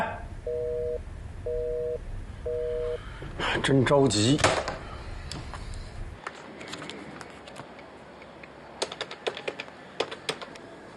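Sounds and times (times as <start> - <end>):
low rumble: 0.0 - 4.0, 4.8 - 6.2
telephone line tone during an outgoing call: 0.5 - 3.0
speech: 3.6 - 4.7.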